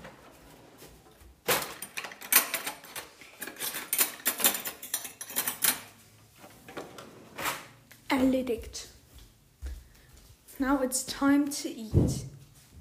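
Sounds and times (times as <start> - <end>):
metal cutlery clinking and rattling: 1.7 - 6.0
speech: 8.1 - 8.9, 10.6 - 12.3.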